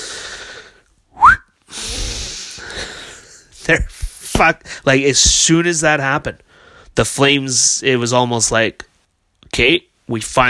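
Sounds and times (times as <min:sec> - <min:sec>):
breathy hissing noise: 0:00.0 - 0:00.9, 0:01.6 - 0:04.9
person whistling with upward pitch sweep: 0:01.1 - 0:01.6
speech: 0:03.7 - 0:08.9, 0:09.5 - 0:10.4.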